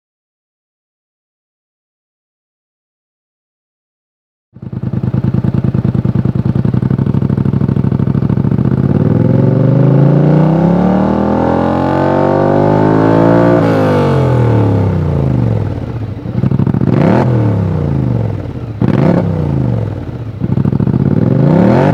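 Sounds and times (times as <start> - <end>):
Polaris Sportsman engine exhaust pipes: 4.6 - 21.9.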